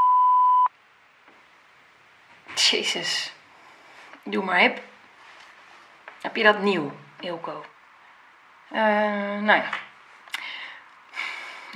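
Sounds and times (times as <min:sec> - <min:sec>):
answering machine beep: 0:00.0 - 0:00.7
speech: 0:02.6 - 0:03.4, 0:04.2 - 0:04.9, 0:06.2 - 0:07.7, 0:08.7 - 0:09.9.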